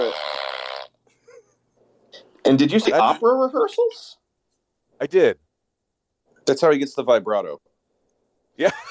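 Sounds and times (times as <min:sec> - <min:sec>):
buzzy fart sound effect from soundboard: 0:00.0 - 0:01.0
speech: 0:02.5 - 0:04.2, 0:05.0 - 0:05.4, 0:06.5 - 0:07.7, 0:08.6 - 0:08.9.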